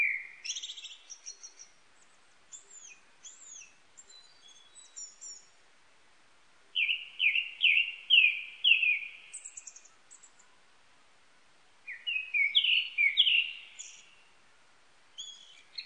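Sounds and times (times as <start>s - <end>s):
Japanese thrush song of high thin twittering phrases: 0.0s - 5.6s, 6.8s - 10.6s, 11.9s - 14.4s, 15.1s - 15.8s.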